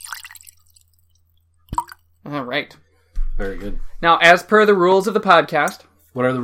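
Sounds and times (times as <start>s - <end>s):
scotch being poured into a glass: 0.0s - 2.1s
speech: 2.3s - 6.4s.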